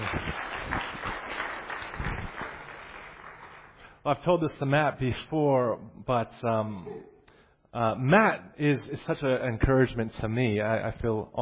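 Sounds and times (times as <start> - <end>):
audience applauding: 0.0 - 3.8
speech: 4.0 - 7.1, 7.7 - 11.4.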